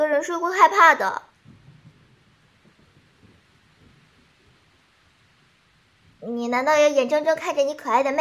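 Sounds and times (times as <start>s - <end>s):
speech: 0.2s - 1.3s, 6.2s - 8.1s
low rumbling thunder outside during a rainstorm at night: 1.3s - 6.9s.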